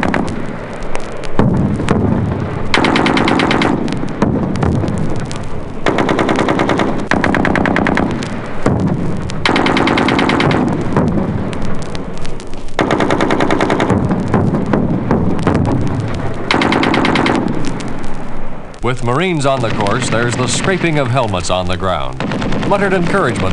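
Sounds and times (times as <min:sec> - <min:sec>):
booming explosions on a military infiltration training course: 0:00.0 - 0:23.5
machine gun fire on a military infiltration training course: 0:01.4 - 0:04.8, 0:05.8 - 0:11.3, 0:12.8 - 0:15.9, 0:16.5 - 0:17.8, 0:22.2 - 0:23.5
speech: 0:18.9 - 0:23.5.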